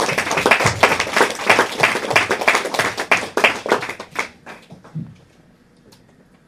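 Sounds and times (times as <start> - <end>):
church audience applauding: 0.0 - 5.0.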